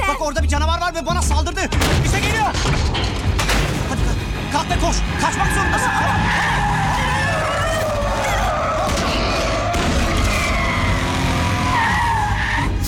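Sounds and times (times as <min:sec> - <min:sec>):
speech: 0:00.2 - 0:03.2, 0:04.5 - 0:06.5
car tires squealing across pavement: 0:04.4 - 0:12.8.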